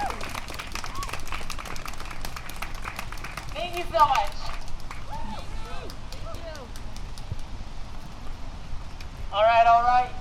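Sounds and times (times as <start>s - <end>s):
crowd applauding: 0.0s - 7.2s
speech: 3.8s - 4.4s.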